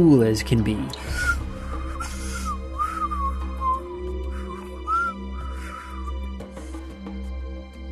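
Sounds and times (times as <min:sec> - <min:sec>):
speech: 0:00.0 - 0:01.4
person whistling a wandering tune: 0:01.1 - 0:06.1.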